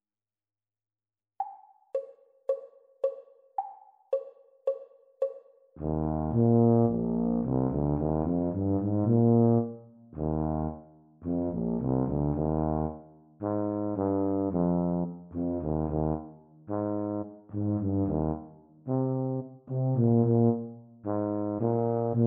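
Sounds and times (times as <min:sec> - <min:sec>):
E-flat tuba duet at exam speed: 0:05.8 - 0:22.2.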